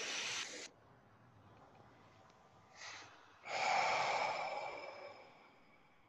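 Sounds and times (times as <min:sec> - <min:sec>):
huge deep breath: 0:02.7 - 0:06.0.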